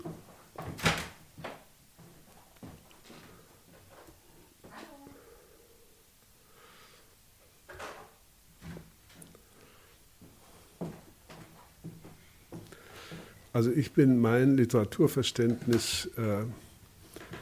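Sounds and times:
door opening and closing: 0.6 - 1.2
speech: 13.6 - 16.7.

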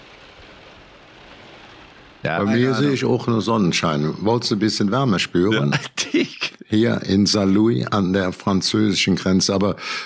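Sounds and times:
steady rain pattering on a Velux skylight window in Cologne: 0.0 - 4.1
speech: 2.2 - 10.0
laughter: 5.4 - 6.6.

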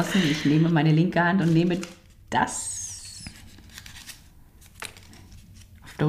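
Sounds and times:
speech: 0.0 - 2.8
paper raffle slips rustling as a hand rummages through them: 1.3 - 6.0.

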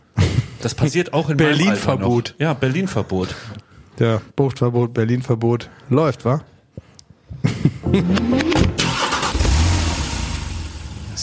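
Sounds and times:
speech: 0.6 - 6.5, 7.6 - 8.5
laughter: 7.5 - 8.5
car engine cranking, revving and idling heard from inside the car: 8.1 - 11.2.

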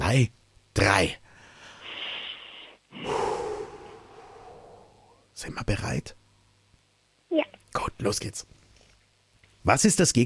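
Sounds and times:
speech: 0.1 - 1.2, 5.4 - 6.2, 7.3 - 8.6, 9.6 - 10.2
deep breath drawn in through the nose: 1.4 - 5.2
long loud exhale: 1.6 - 5.2.

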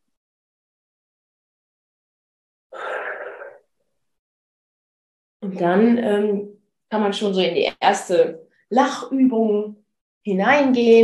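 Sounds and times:
loud breathy exhale during a breathing exercise: 2.8 - 3.6
speech: 5.4 - 11.0.

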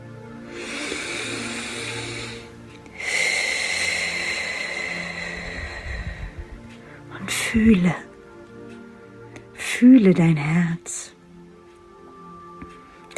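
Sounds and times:
deep breathing in and out: 0.3 - 8.1
speech: 7.6 - 8.1, 9.8 - 10.9.

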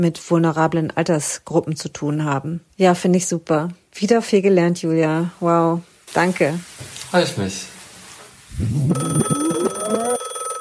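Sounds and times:
speech: 0.0 - 7.7, 8.6 - 9.5
telephone ringing: 8.8 - 10.5.

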